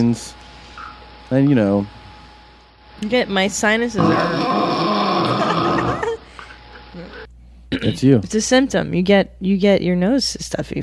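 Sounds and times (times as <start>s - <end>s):
speech: 0.0s - 0.4s, 1.3s - 2.0s, 3.0s - 4.6s, 7.8s - 10.8s
person imitating loud raspy snoring: 4.0s - 6.2s
laughter: 5.1s - 7.3s.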